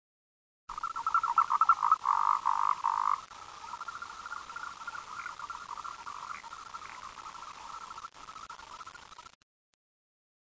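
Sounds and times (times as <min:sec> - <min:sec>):
frog croaking: 0:00.7 - 0:08.9.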